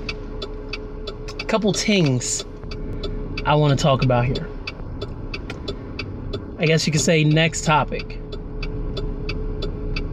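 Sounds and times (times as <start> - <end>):
cars rumbling in traffic: 0.0 - 10.1
faint high ticking: 0.0 - 10.1
speech: 1.5 - 2.5, 3.4 - 4.5, 6.6 - 8.2.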